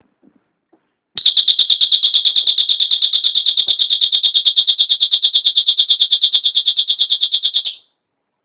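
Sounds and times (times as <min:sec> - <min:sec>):
12V siren: 0:01.2 - 0:07.8.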